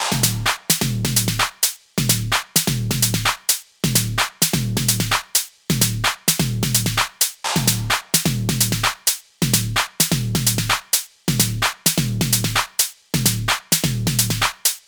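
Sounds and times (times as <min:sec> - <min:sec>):
drum loop: 0:00.0 - 0:14.8.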